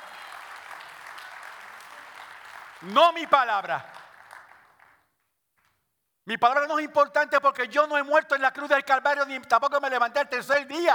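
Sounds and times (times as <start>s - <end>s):
congregation applauding at a religious service: 0.0s - 5.2s
speech: 2.8s - 4.0s, 6.3s - 10.9s.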